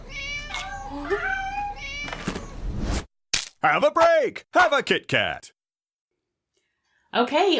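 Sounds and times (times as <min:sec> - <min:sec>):
cats meowing: 0:00.0 - 0:02.6
speech: 0:03.6 - 0:05.6, 0:07.1 - 0:07.5.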